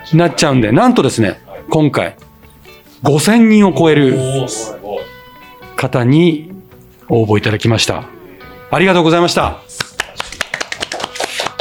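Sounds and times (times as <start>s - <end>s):
speech: 0.1s - 2.3s, 3.0s - 5.1s, 5.8s - 6.5s, 7.1s - 9.7s
hands clapping: 9.4s - 11.6s.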